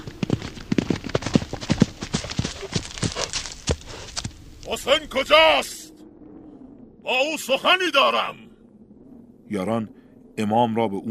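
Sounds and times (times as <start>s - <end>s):
hoofbeats of a horse ridden at speed: 0.0s - 4.4s
speech: 4.7s - 5.8s, 7.1s - 8.4s, 9.5s - 11.0s.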